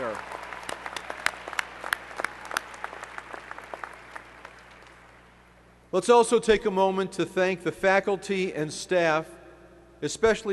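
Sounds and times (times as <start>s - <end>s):
sharp individual claps: 0.0s - 5.4s
crowd applauding at a graduation ceremony: 0.0s - 5.5s
speech: 5.9s - 9.4s, 10.0s - 10.5s.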